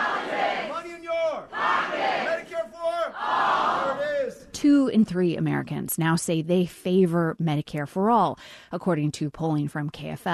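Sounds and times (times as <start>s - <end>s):
large crowd chanting a campaign slogan: 0.0s - 4.4s
speech: 4.6s - 10.3s.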